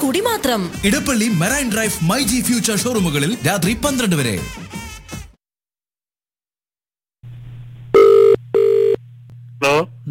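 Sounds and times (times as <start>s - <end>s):
speech: 0.0s - 4.8s, 9.6s - 10.0s
outgoing phone call ringback tone: 8.0s - 9.0s.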